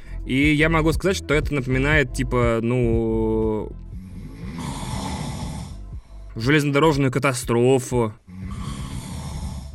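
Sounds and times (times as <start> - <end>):
speech: 0.3 - 3.8, 6.4 - 8.6
person imitating loud snoring: 3.9 - 5.9, 8.2 - 9.7.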